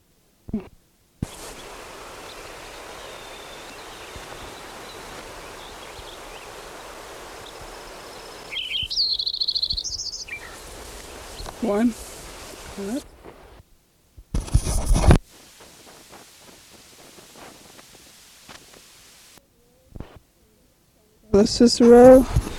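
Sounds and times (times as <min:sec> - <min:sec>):
steady outdoor hiss: 0:00.0 - 0:22.5
speech: 0:00.5 - 0:00.8, 0:11.6 - 0:12.1, 0:12.8 - 0:13.1, 0:21.4 - 0:22.5
Lincoln's sparrow song: 0:01.2 - 0:13.6, 0:21.4 - 0:22.5.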